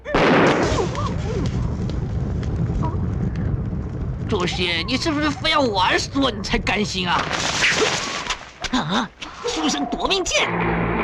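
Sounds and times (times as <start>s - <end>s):
explosive burst from a thrown exploding pellet: 0.0s - 8.6s
rumbling crackling roar: 0.1s - 8.6s
speech: 4.4s - 8.0s, 8.7s - 10.8s.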